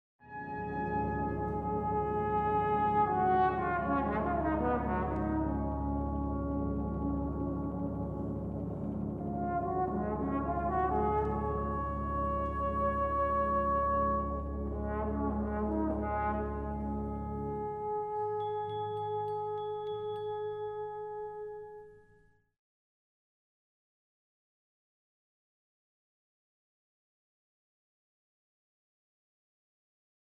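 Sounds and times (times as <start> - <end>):
trombone cadenza: 0.3 - 21.9.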